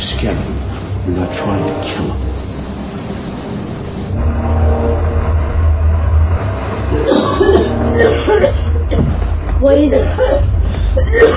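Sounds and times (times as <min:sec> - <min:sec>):
low engine rumble: 0:00.0 - 0:11.3
speech: 0:00.2 - 0:02.3, 0:09.6 - 0:10.5, 0:11.1 - 0:11.3
people coughing: 0:07.0 - 0:09.4, 0:10.0 - 0:11.3.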